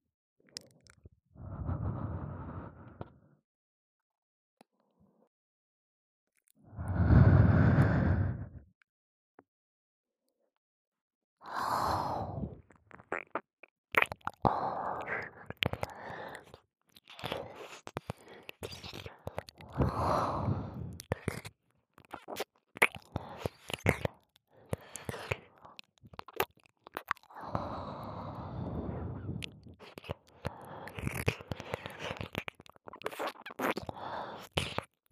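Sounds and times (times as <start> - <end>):
heavy warm breath exhaled against the microphone: 1.4 - 3.3, 6.7 - 8.7, 19.8 - 21.0, 27.6 - 29.6
wet mouth clicks and smacking: 11.5 - 35.1.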